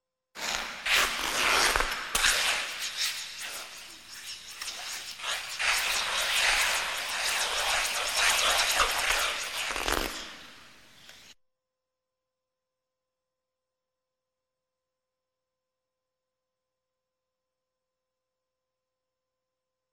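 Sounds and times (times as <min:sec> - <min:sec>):
ice skates gliding and spinning: 0:00.4 - 0:11.4.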